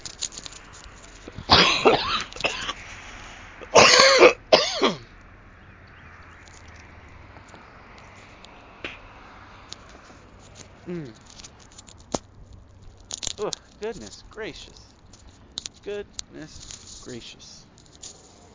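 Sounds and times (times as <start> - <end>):
person coughing: 1.5 - 2.8, 3.7 - 5.1
speech: 13.9 - 14.9, 15.9 - 17.7.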